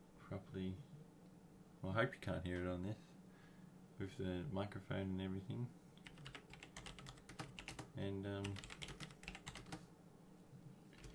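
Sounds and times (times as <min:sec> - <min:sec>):
speech: 0:00.3 - 0:01.0, 0:01.8 - 0:03.1, 0:04.0 - 0:05.8, 0:08.0 - 0:08.7
typing a message on a computer keyboard: 0:06.0 - 0:09.8, 0:10.9 - 0:11.1.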